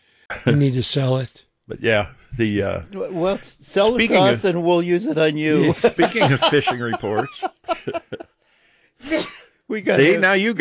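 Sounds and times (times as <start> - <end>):
speech: 0.4 - 8.3, 9.0 - 10.5
laughter: 3.1 - 8.4
person sneezing: 9.0 - 9.5.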